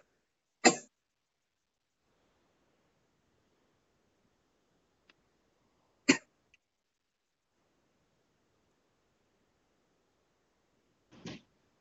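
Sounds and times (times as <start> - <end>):
person coughing: 0.6 - 0.9.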